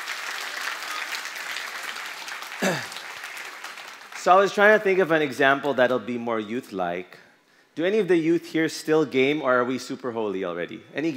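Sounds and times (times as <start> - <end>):
room full of people clapping: 0.0 - 4.5
speech: 2.6 - 2.9, 4.2 - 7.2, 7.8 - 11.1.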